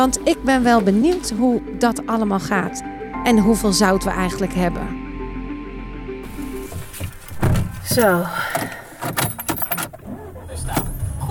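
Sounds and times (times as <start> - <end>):
speech: 0.0 - 5.0, 7.9 - 8.7
car door and seat handling: 6.3 - 11.2
keys jangling: 7.9 - 11.0.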